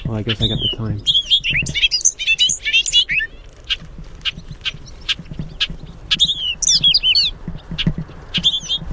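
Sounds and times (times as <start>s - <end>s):
speech: 0.1s - 1.8s
bobolink sharp single call notes: 0.3s - 7.4s.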